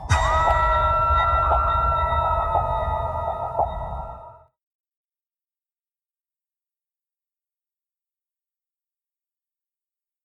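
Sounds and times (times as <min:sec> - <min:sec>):
low rumbling underwater background: 0:00.0 - 0:04.4
submarine underwater sonar-like tonal drones with rising sweep: 0:00.0 - 0:04.5.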